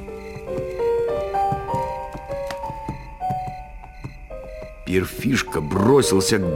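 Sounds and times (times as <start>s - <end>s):
horse hooves clip-clopping at a walking pace in a country estate courtyard: 0.0s - 4.9s
speech: 4.9s - 6.5s.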